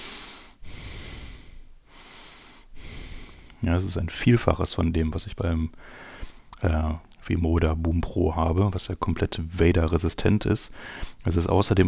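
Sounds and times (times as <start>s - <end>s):
heavy breathing into a headset microphone: 0.0s - 3.6s, 5.8s - 6.5s, 10.7s - 11.2s
speech: 3.6s - 11.8s.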